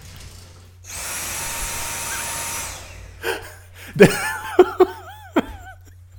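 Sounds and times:
modern cordless vacuum cleaner motor whine: 0.8s - 3.2s
laughter: 3.2s - 5.9s
speech: 4.0s - 4.3s.

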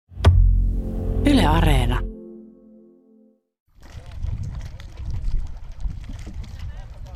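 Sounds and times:
short musical tone: 0.3s - 3.5s
speech: 1.5s - 2.1s
gusty wind rumbling against the microphone: 3.8s - 7.1s.

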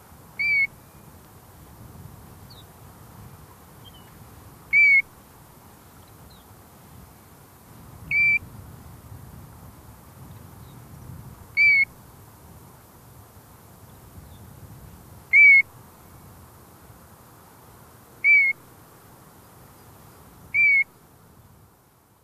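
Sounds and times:
European Golden Plover whistling calls: 0.4s - 1.1s, 4.7s - 5.1s, 8.1s - 8.4s, 11.6s - 11.9s, 15.3s - 15.7s, 18.2s - 18.6s, 20.6s - 20.9s.

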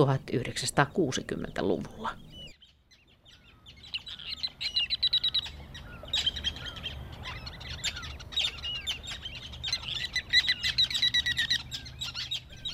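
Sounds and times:
speech: 0.0s - 2.3s
ruddy turnstone calls: 0.0s - 12.7s.

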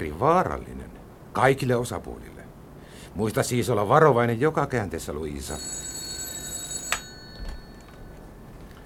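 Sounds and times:
speech: 0.0s - 0.8s, 1.4s - 2.3s, 3.1s - 5.9s
telephone bell ringing: 5.4s - 8.8s.

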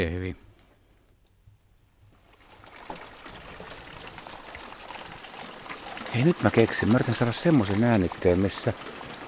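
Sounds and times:
speech: 0.0s - 0.4s, 6.2s - 8.9s
first summer rain pattering: 2.2s - 9.2s.

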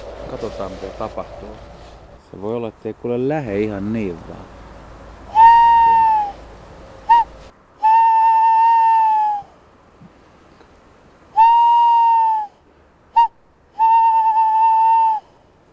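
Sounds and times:
speech: 0.3s - 4.6s
person whistling an imitation of a tawny owl's hoot: 5.3s - 6.4s, 7.1s - 9.6s, 11.3s - 15.4s.

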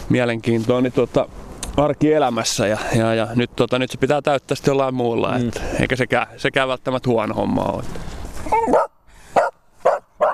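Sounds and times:
speech: 0.1s - 8.9s
dog barking excitedly in a forest: 8.5s - 10.3s.

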